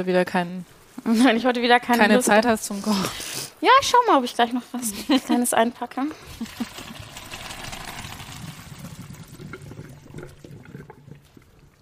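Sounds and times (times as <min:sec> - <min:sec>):
speech: 0:00.0 - 0:06.7
laughter: 0:04.8 - 0:05.6, 0:06.3 - 0:07.0
cooked pasta and water poured from a pot into a strainer in a home kitchen: 0:06.4 - 0:11.8.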